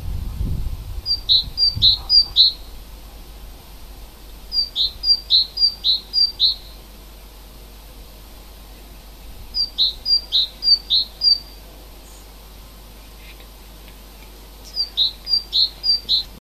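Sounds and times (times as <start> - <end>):
native forest bird song: 1.1 - 2.8, 4.5 - 6.8, 9.5 - 12.4, 14.6 - 16.3.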